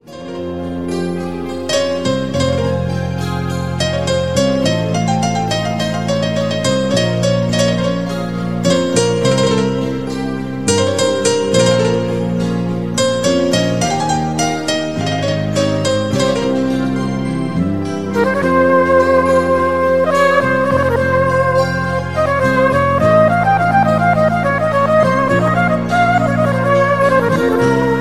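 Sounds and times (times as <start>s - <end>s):
piano ringtone: 0.0s - 27.9s.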